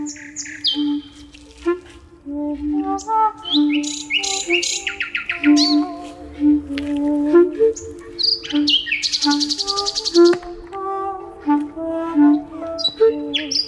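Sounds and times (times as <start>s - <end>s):
nightingale singing varied trills, whistles and buzzy bursts: 0.0s - 1.4s, 2.8s - 10.6s, 11.5s - 13.6s
sustained clarinet tones: 0.0s - 13.6s
sustained violin tones: 0.0s - 13.6s.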